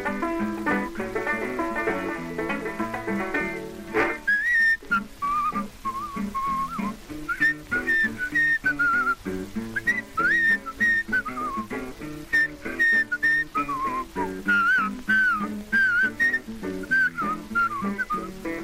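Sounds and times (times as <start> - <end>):
piano playing lively ragtime: 0.0 - 18.6
man whistling a rag melody: 0.7 - 1.2, 4.2 - 18.6.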